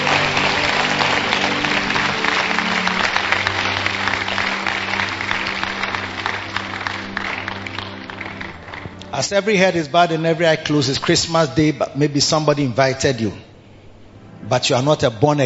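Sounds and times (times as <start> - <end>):
audience clapping and applauding: 0.0 - 9.3
low sustained organ-like tones: 0.0 - 15.4
speech: 9.2 - 13.5, 14.4 - 15.4.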